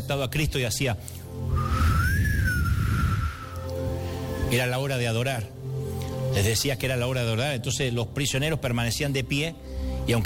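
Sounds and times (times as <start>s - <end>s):
speech: 0.1s - 1.6s, 4.5s - 5.6s, 6.3s - 10.2s
sustained whistle signal in a prison cell block: 1.5s - 3.8s.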